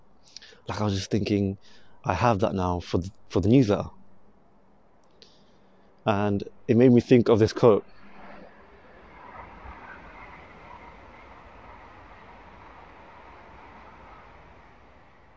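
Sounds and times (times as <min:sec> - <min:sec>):
speech: 0:00.7 - 0:04.0, 0:06.0 - 0:08.0
train rumbling past: 0:06.4 - 0:15.3.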